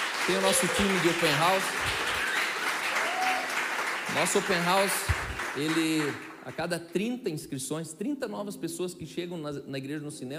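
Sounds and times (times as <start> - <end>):
church audience applauding for a team: 0.0 - 6.6
speech: 0.3 - 2.1, 4.1 - 10.3.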